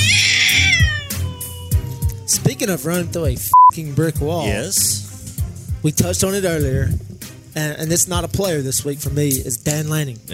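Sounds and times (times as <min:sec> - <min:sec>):
cat meowing loudly: 0:00.0 - 0:02.5
speech: 0:02.6 - 0:05.1, 0:05.8 - 0:10.3.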